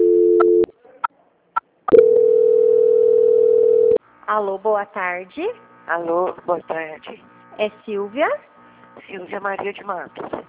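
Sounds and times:
steady telephone tone during a call transfer: 0.0 - 0.7, 1.9 - 4.0
speech: 4.3 - 10.4.

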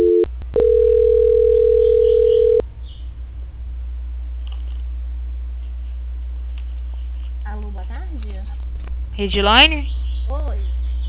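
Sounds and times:
telephone tone during a call transfer: 0.0 - 2.6
low telephone line hum: 0.0 - 11.0
speech: 9.2 - 10.0.

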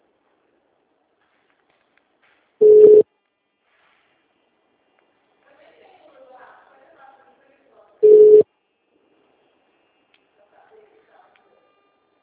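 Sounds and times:
mobile phone incoming call electronic tones: 2.6 - 3.0, 8.0 - 8.4.

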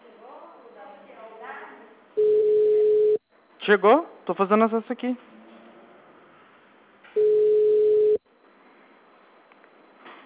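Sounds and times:
telephone line tone while placing a call: 2.2 - 3.2, 7.2 - 8.2
speech: 3.7 - 5.4.

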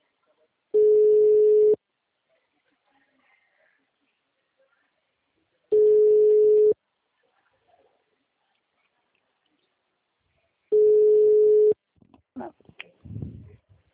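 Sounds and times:
ringback tone of an outgoing phone call: 0.8 - 1.8, 5.7 - 6.8, 10.7 - 11.8.

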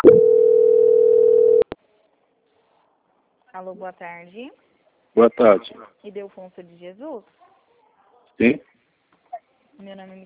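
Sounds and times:
telephone call transfer tone: 0.0 - 1.6
speech: 3.6 - 7.5, 8.4 - 8.7, 9.8 - 10.2.

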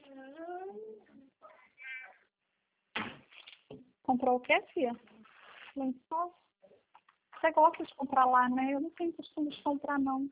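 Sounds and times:
cat meowing: 1.8 - 2.2
sharp noisy thump: 3.0 - 3.3
speech: 4.1 - 5.1, 5.8 - 6.4, 7.4 - 10.3.

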